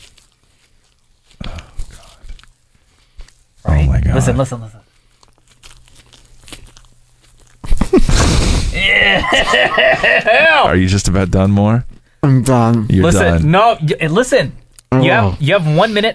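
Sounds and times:
man chewing soft Peeps marshmallow candy in a timed eating challenge: 0.0 - 3.6, 4.9 - 8.0
speech: 3.7 - 4.8, 9.3 - 16.1
laughter: 8.8 - 10.7.

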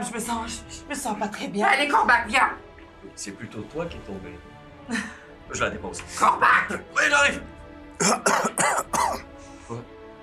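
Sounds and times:
speech: 0.0 - 10.0
harsh raspy coughs: 8.0 - 9.3.

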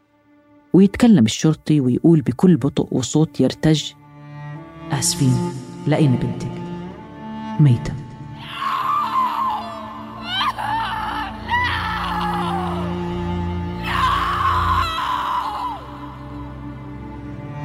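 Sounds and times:
speech: 0.7 - 4.0, 4.9 - 6.6, 7.6 - 8.0
woman wailing and screaming in anguish with sobbing: 8.4 - 13.1, 13.8 - 16.2.

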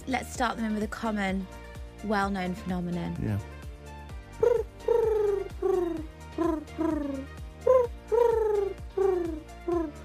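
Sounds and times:
speech: 0.1 - 3.5
pigeon cooing: 4.4 - 10.0.

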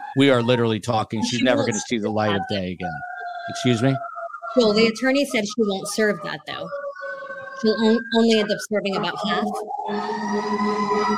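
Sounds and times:
emergency vehicle sirens: 0.0 - 11.1
laughter: 0.2 - 4.0
speech: 0.2 - 6.8, 7.6 - 11.1.

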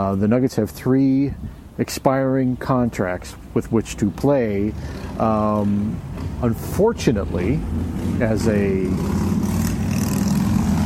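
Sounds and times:
speech: 0.0 - 9.3
motorcycle passing by: 4.8 - 10.8.

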